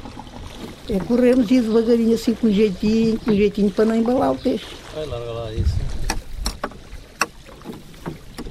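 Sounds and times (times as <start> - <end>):
oars splashing and knocking as fishermen row a boat: 0.0 - 8.5
speech: 0.9 - 6.0
low wind rumble: 4.3 - 6.6.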